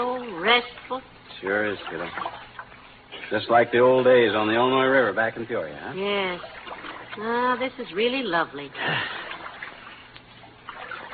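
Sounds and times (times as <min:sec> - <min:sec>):
water swishing and lapping around a gliding canoe: 0:00.0 - 0:03.4, 0:06.0 - 0:07.8, 0:08.8 - 0:11.1
water splashes: 0:00.0 - 0:11.1
speech: 0:00.4 - 0:02.5, 0:03.3 - 0:06.6, 0:07.2 - 0:09.2.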